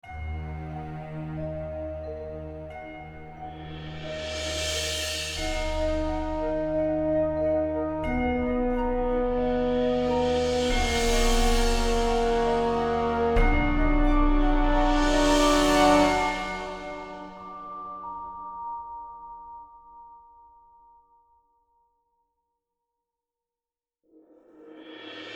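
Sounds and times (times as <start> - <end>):
cinematic stabs: 3.4 - 18.1.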